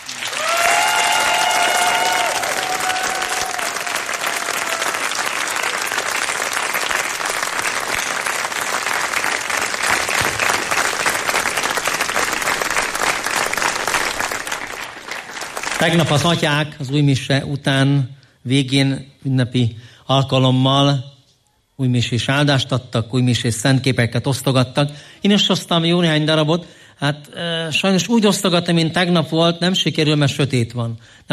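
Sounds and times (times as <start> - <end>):
audience applause: 0.0 - 16.4
whoops and cheers: 0.2 - 6.0
speech: 15.8 - 21.1, 21.8 - 31.3.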